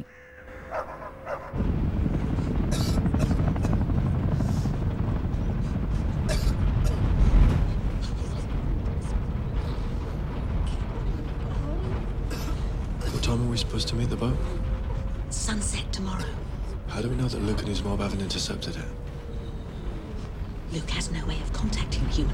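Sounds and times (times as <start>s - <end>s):
low-flying helicopters passing a bus on a country road: 0.0s - 22.3s
speech: 17.0s - 19.1s, 20.7s - 22.3s.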